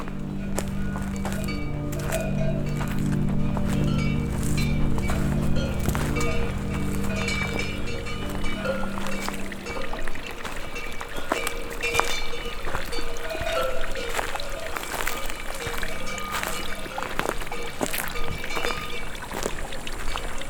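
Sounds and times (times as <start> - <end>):
steady low outdoor rumble in a mountain pasture: 0.0 - 10.9
Mérens horse hoof clops in a mountain pasture: 0.0 - 20.4.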